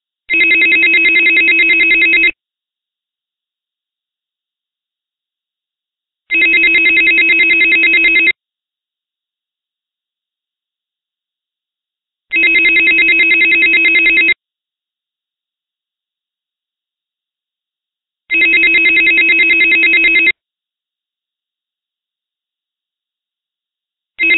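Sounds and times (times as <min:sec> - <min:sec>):
external phone call ringing: 0:00.3 - 0:02.4, 0:06.3 - 0:08.4, 0:12.3 - 0:14.4, 0:18.3 - 0:20.4, 0:24.2 - 0:24.3.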